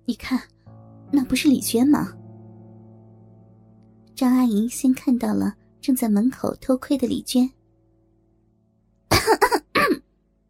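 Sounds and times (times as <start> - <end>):
speech: 0.1 - 0.6, 1.3 - 2.2, 4.2 - 7.6
person coughing deliberately: 9.1 - 10.1.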